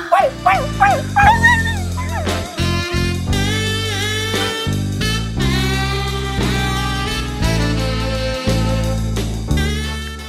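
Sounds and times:
person imitating a dog barking with high yelping woofs: 0:00.0 - 0:02.7
steady music: 0:00.0 - 0:10.2.

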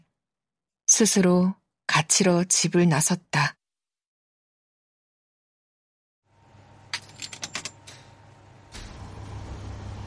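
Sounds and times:
speech: 0:01.0 - 0:03.6
laundromat washing machine low mechanical rumble: 0:06.3 - 0:10.0
coins clinking into laundromat washing machine slot: 0:06.9 - 0:07.9.

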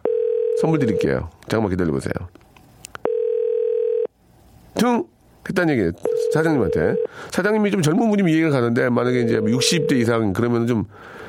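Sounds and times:
telephone ringback tone: 0:00.0 - 0:01.0, 0:03.0 - 0:04.1, 0:06.1 - 0:07.1, 0:09.2 - 0:10.1
speech: 0:00.6 - 0:02.4, 0:04.8 - 0:11.2.

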